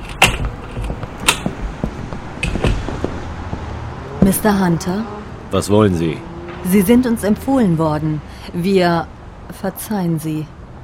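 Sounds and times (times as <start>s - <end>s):
door opening with sharp latch clicks and knocks: 0.0s - 1.5s, 2.4s - 2.9s
speech: 4.3s - 10.6s.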